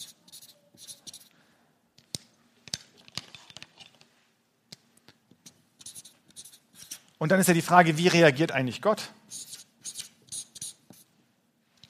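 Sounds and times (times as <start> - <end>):
handwriting scratching: 0.0 - 1.3, 5.4 - 7.1, 9.3 - 11.1
speech: 7.2 - 9.2.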